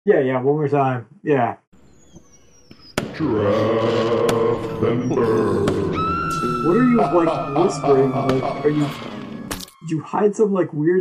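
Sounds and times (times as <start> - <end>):
speech: 0.0 - 1.6, 3.2 - 9.2, 9.9 - 10.9
laughter: 3.2 - 9.2
firework whistle: 5.9 - 9.2.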